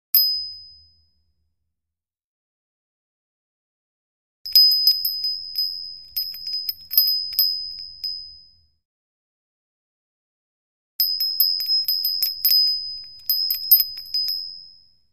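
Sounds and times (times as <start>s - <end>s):
small bell ringing: 4.5s - 8.8s, 11.0s - 15.1s.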